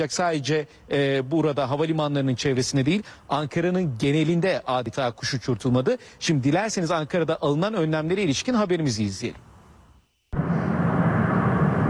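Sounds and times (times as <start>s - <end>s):
speech: 0.0s - 9.5s
aircraft engines of planes landing at an airport in Ankara: 10.4s - 11.8s.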